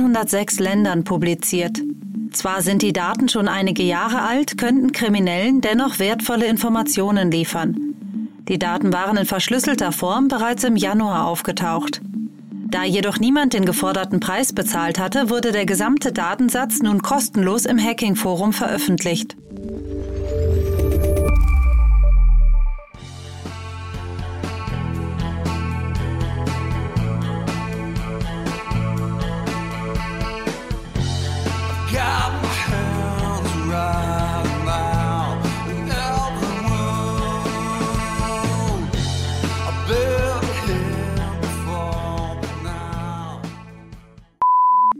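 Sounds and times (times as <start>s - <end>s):
speech: 0.0s - 19.6s
brief low rumble: 19.4s - 23.1s
AI-composed grunge rock song with distorted guitars and pounding drums: 23.0s - 44.1s
short electronic beep: 44.4s - 44.9s.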